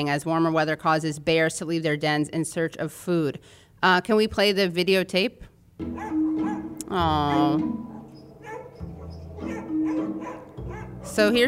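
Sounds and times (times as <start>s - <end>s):
speech: 0.0s - 6.1s, 6.9s - 7.9s, 11.0s - 11.4s
several dogs barking and yipping excitedly in a recorded video: 5.8s - 11.4s.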